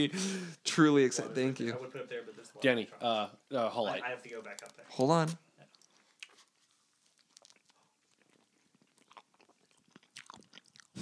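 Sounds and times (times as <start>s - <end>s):
speech: 0.0s - 5.4s
crunchy clicks and mouth noises: 4.4s - 11.0s
wet chewing of ice cream cake with cookie dough: 4.4s - 11.0s.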